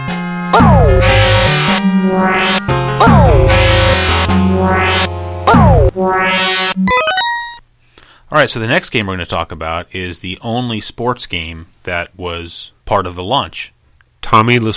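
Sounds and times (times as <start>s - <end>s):
quick stepped upward tone: 0.6s - 7.6s
rising whine: 0.6s - 7.6s
synthetic video game sound effect of an enemy firing yellow torpedoes in a scrolling shooter: 0.6s - 7.6s
speech: 8.3s - 14.7s.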